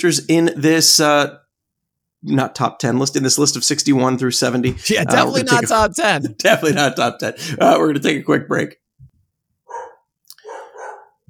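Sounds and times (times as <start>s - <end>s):
speech: 0.0s - 1.4s, 2.2s - 8.8s
laughter: 4.7s - 7.1s
dog barking: 9.7s - 11.2s.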